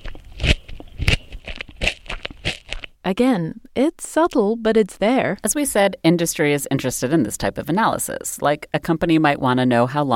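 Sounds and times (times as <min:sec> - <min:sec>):
person biting and chewing a crunchy carrot: 0:00.0 - 0:03.0
speech: 0:03.1 - 0:10.1.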